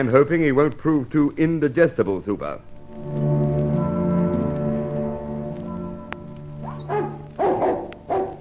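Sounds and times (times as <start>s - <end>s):
speech: 0.0s - 3.2s
steady low droning sound: 2.5s - 8.1s
dog barking in short loud bursts: 6.6s - 8.3s.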